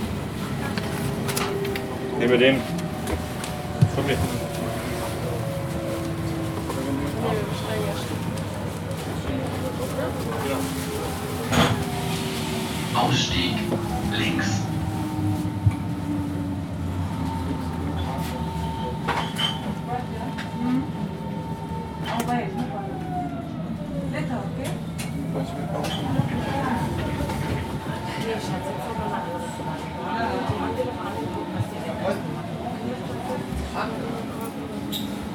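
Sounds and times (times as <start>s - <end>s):
S-Bahn commuter train rumbling in motion: 0.0s - 35.3s
speech: 2.2s - 3.2s, 4.0s - 4.4s, 13.0s - 14.7s.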